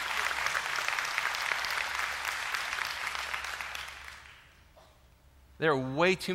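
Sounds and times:
large crowd applauding: 0.0s - 4.6s
speech: 5.6s - 6.3s.

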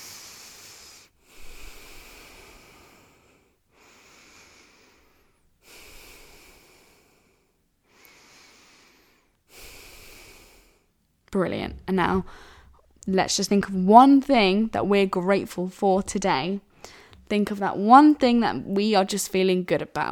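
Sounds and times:
slow deep breathing: 0.0s - 11.0s, 12.2s - 12.9s, 16.7s - 17.3s
speech: 11.3s - 20.1s.

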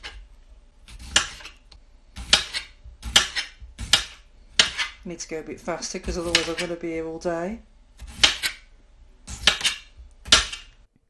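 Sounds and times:
knife chopping cucumbers on a board: 0.9s - 1.6s, 2.2s - 5.0s, 6.0s - 6.7s, 8.0s - 8.6s, 9.3s - 10.7s
speech: 5.0s - 7.7s.

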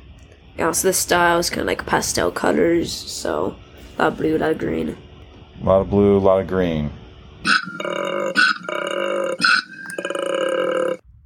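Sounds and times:
speech: 0.6s - 5.0s, 5.6s - 7.0s
koala bellowing: 7.5s - 11.0s.

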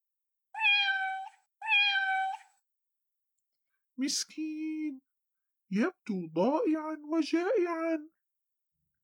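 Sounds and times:
cat meowing with long drawn-out calls: 0.6s - 2.5s
speech: 4.0s - 5.1s, 5.7s - 8.1s.

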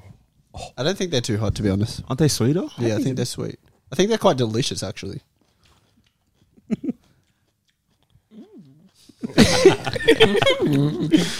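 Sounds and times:
speech: 0.8s - 5.3s, 9.3s - 11.3s
chewing small pickled chili peppers: 5.2s - 9.2s
laughter: 9.2s - 11.3s.

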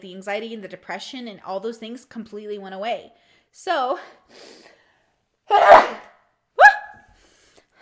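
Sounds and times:
speech: 0.0s - 4.7s, 5.5s - 6.1s
person sneezing: 5.5s - 6.9s.

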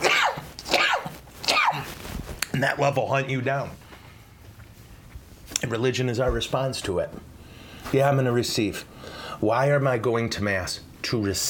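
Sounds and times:
sneezes: 0.0s - 2.0s
speech: 2.6s - 3.8s, 5.6s - 11.4s.

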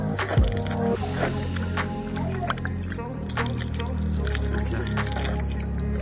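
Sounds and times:
water poured over hands for washing: 0.2s - 6.0s.

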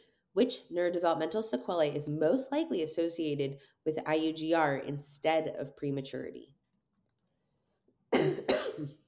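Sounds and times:
speech: 0.4s - 6.6s
harsh coughs: 8.1s - 9.0s.

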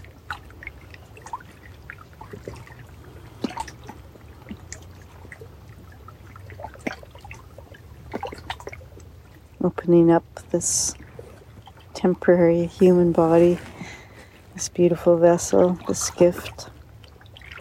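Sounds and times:
gentle ocean waves lapping: 0.0s - 17.5s
small water splashes and trickles: 0.0s - 17.5s
speech: 9.6s - 11.0s, 12.0s - 13.7s, 14.6s - 16.7s.

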